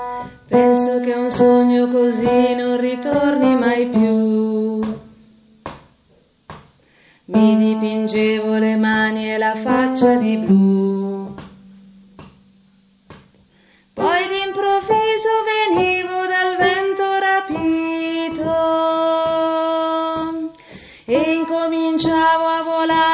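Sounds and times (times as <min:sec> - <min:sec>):
person singing in a low voice: 0:00.5 - 0:05.1, 0:07.3 - 0:11.6, 0:14.0 - 0:23.1.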